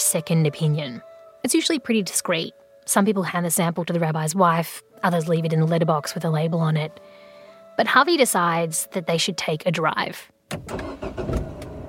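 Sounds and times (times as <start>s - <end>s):
speech: 0.1s - 7.2s, 7.8s - 11.4s
car engine cranking and starting: 10.5s - 11.8s.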